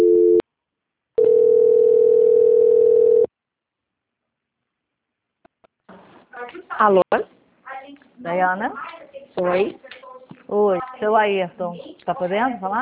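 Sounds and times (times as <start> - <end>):
telephone call transfer tone: 0.0 - 0.4, 1.2 - 3.3
speech: 6.8 - 7.3, 8.2 - 9.9, 10.5 - 12.7.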